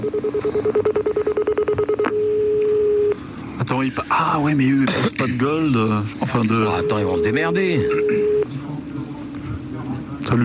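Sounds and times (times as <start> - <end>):
speech: 0.0 - 1.2, 3.7 - 8.3, 10.3 - 10.4
telephone number being dialed with DTMF touch-tone beeps: 0.0 - 3.2, 6.4 - 8.5.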